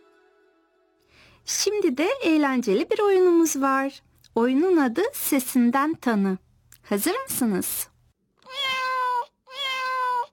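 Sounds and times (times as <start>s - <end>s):
speech: 1.4s - 7.9s
cat meowing: 8.4s - 10.3s.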